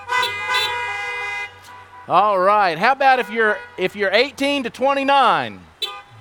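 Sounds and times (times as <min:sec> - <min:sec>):
car horns honking: 0:00.0 - 0:06.1
speech: 0:02.1 - 0:05.7.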